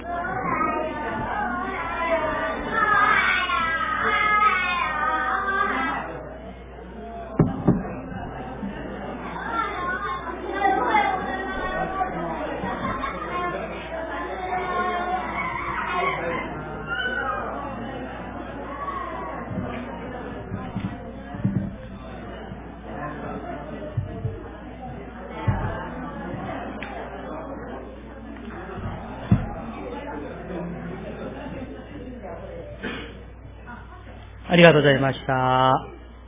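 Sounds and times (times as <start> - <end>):
church audience chatting while greeting neighbors during a worship service: 0.0 - 36.2
knocks and thumps: 7.4 - 8.0, 20.5 - 22.1, 23.9 - 24.5, 25.4 - 26.4
speech: 34.6 - 35.9.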